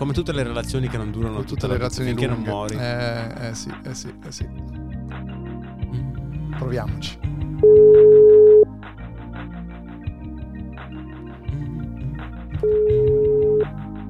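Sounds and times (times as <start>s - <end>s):
speech: 0.0s - 4.8s, 6.6s - 7.3s, 12.6s - 13.0s
quiet music: 0.0s - 14.0s
telephone call ringback tones: 7.6s - 8.7s, 12.7s - 13.7s.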